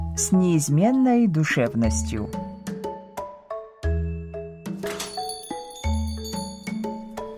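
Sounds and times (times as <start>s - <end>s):
speech: 0.2s - 2.5s
shop entrance chime playing bell-like notes: 4.7s - 7.3s.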